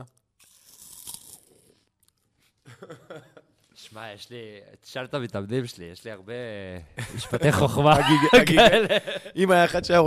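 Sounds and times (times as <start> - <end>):
crunching of a peanut puff snack: 0.3 - 2.2
laughter: 2.7 - 3.5, 7.0 - 9.4
speech: 2.8 - 10.0.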